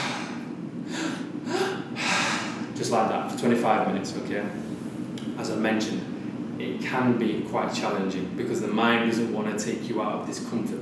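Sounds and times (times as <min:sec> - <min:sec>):
person breathing in and out in breathwork: 0:00.0 - 0:02.7
speech: 0:02.8 - 0:10.7.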